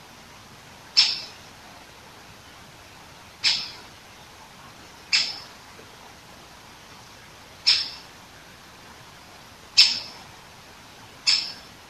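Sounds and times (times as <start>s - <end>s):
Great Spotted Woodpecker giving kick calls: 1.0s - 1.4s, 3.4s - 3.9s, 5.1s - 5.5s, 7.6s - 8.1s, 9.8s - 10.2s, 11.2s - 11.7s.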